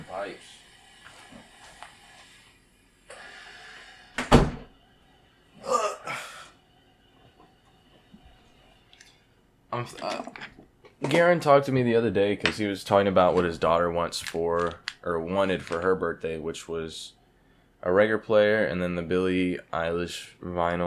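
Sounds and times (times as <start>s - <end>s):
door pushed shut with a solid thunk: 4.2s - 4.7s
speech: 9.8s - 17.2s, 17.8s - 20.8s.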